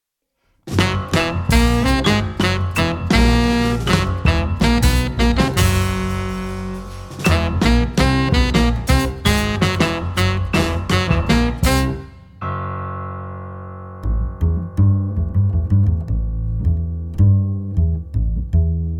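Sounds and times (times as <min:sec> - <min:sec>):
jazz drums: 0:00.6 - 0:12.2
jazz piano: 0:00.6 - 0:18.9
jazz double bass: 0:00.7 - 0:12.2, 0:13.6 - 0:18.9
jazz saxophone: 0:00.7 - 0:12.2.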